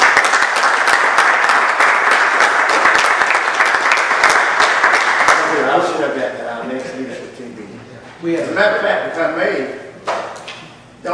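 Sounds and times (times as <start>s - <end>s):
audience applause: 0.0s - 5.7s
speech: 8.2s - 9.8s.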